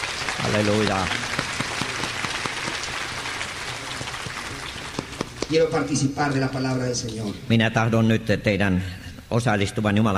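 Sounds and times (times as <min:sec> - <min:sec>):
congregation applauding at an evening church service: 0:00.0 - 0:05.7
speech: 0:00.4 - 0:01.4, 0:05.5 - 0:10.1.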